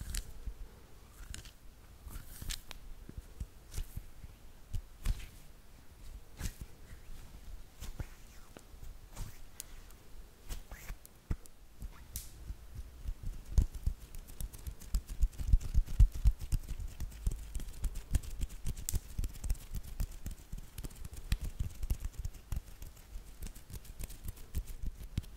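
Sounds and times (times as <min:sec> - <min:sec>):
hands rubbing, tapping and handling things: 0:01.2 - 0:04.1, 0:04.7 - 0:05.4, 0:10.5 - 0:25.3.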